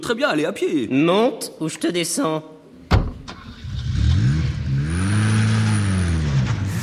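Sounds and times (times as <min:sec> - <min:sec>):
speech: 0:00.0 - 0:02.6
car engine revving as the vehicle pulls away: 0:03.2 - 0:06.8.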